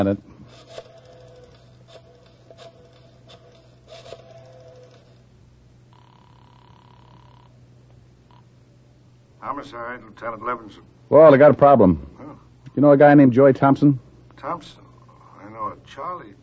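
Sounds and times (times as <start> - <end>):
speech: 0.0 - 0.9, 9.4 - 14.8, 15.6 - 16.4
phone line ringing tone: 0.0 - 5.3, 5.9 - 7.6
phone dialing clicks: 0.5 - 5.2.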